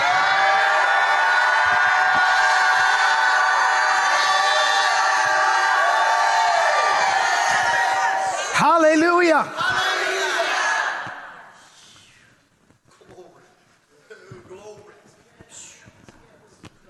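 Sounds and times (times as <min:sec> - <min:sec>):
large crowd shouting and cheering: 0:00.0 - 0:11.6
speech: 0:08.9 - 0:09.8.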